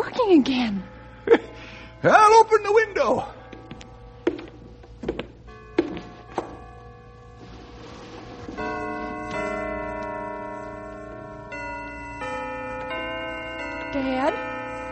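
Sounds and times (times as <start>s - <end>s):
church bells ringing: 0.0s - 14.9s
speech: 0.2s - 3.4s, 14.0s - 14.5s
hollow knocks and clunks: 3.5s - 6.7s.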